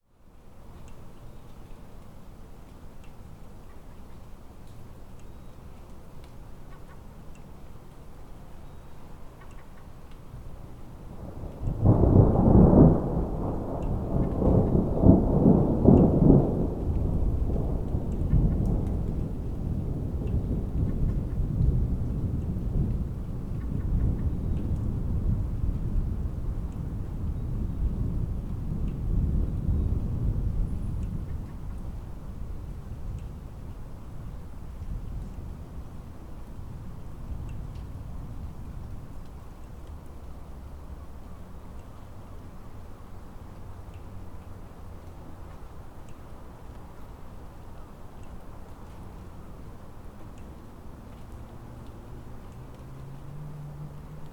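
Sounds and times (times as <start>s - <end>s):
distant urban traffic: 0.3s - 54.3s
distant thunder: 11.1s - 39.5s.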